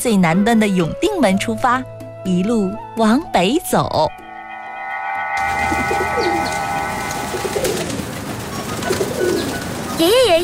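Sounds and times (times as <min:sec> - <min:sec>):
speech: 0:00.0 - 0:04.2, 0:10.0 - 0:10.4
humming drone: 0:03.9 - 0:09.3
large flock of pigeons cooing: 0:05.8 - 0:10.1
large flock of pigeons with fluttering wingbeats: 0:07.3 - 0:10.4.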